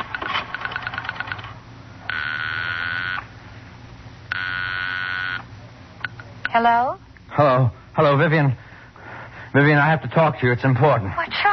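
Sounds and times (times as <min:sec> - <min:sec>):
long steady telephone ringing tones on the line: 0:00.5 - 0:03.3, 0:04.3 - 0:05.5
speech: 0:06.5 - 0:08.6, 0:09.5 - 0:11.5.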